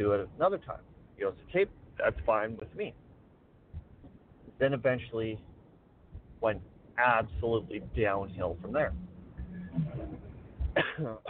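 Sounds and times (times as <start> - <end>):
speech: 0.0 - 3.0, 4.6 - 5.5, 6.4 - 9.1, 9.8 - 11.2
person coughing raspily: 10.7 - 11.2
rough throat clearing: 10.7 - 11.2.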